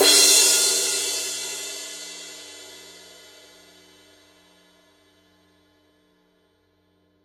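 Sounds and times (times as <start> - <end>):
Paiste Rude 18 thin crash cymbal struck on edge: 0.0 - 4.3.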